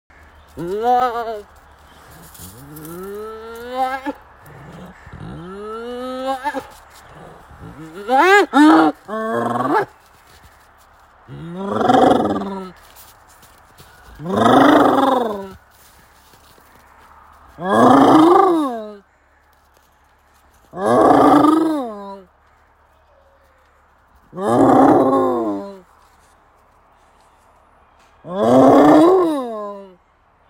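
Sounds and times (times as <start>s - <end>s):
long hyena call: 0.2s - 13.1s, 13.8s - 16.8s, 17.6s - 19.6s, 20.2s - 26.2s, 28.2s - 30.1s.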